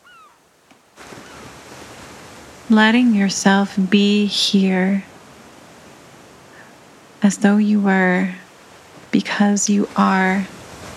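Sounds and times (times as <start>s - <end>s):
bird calls like gulls: 0.0s - 2.6s
ocean wave breaking and rushing in on a beach: 0.0s - 10.9s
speech: 2.7s - 5.1s, 7.3s - 8.4s, 9.1s - 10.6s.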